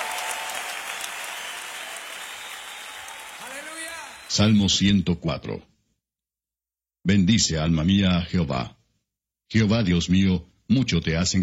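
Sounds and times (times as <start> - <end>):
large crowd applauding: 0.0 - 4.6
speech: 4.3 - 5.7, 7.0 - 8.8, 9.5 - 11.4.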